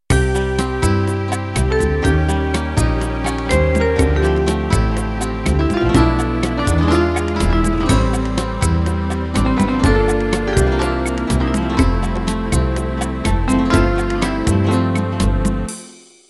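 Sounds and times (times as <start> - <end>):
unplugged Latin music intro: 0.1 - 16.2.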